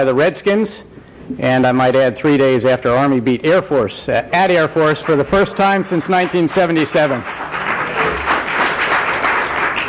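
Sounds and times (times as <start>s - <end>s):
speech: 0.0s - 7.7s
audience of service members and guests applauding at a military gathering: 4.8s - 9.8s.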